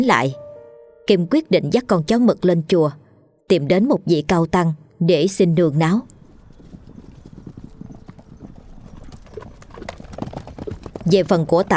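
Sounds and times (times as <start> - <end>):
speech: 0.0 - 0.4, 1.1 - 6.1, 11.1 - 11.7
horse galloping: 6.0 - 11.7.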